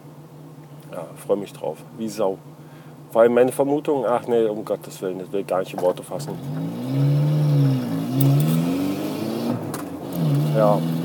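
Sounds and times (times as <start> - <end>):
speech: 0.9 - 7.2, 8.2 - 8.4, 10.6 - 11.0
75 PS car engine revving: 5.8 - 11.0.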